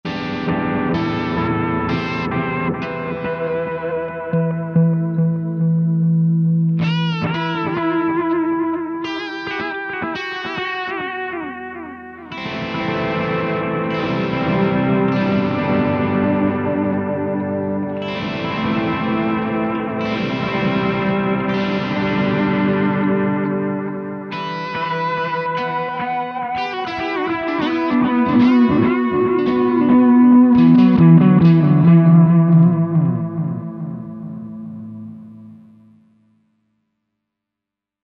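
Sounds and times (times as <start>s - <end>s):
electric guitar playing blues through an amp modeler: 0.0s - 36.0s.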